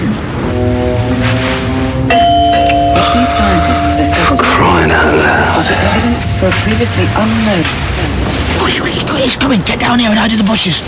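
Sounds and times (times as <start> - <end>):
steady hiss: 0.0 - 10.8
doorbell two-note ding-dong chime: 2.1 - 7.5
speech: 5.6 - 10.8.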